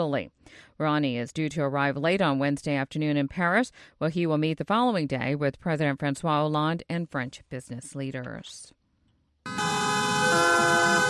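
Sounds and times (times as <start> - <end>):
speech: 0.0 - 8.8
taxi car horns honking at an anti-Uber street protest: 9.5 - 11.0.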